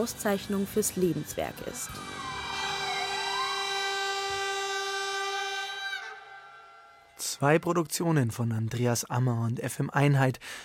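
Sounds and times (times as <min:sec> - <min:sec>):
speech: 0:00.0 - 0:02.3, 0:07.4 - 0:10.6
locomotive and motorcycle sirens wailing in an avant-garde music piece: 0:00.9 - 0:07.4.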